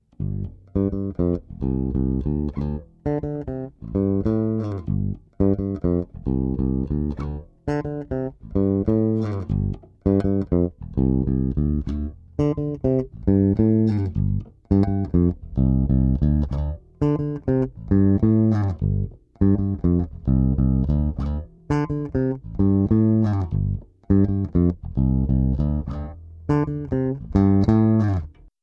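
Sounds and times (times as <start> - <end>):
electric bass blend: 0.0 - 28.5.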